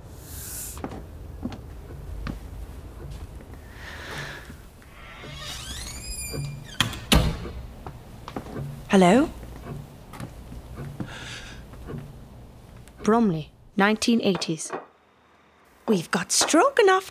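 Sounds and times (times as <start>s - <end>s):
door creaking open with hinge squeal: 4.1s - 7.9s
speech: 9.0s - 9.4s, 13.1s - 14.8s, 15.9s - 17.1s.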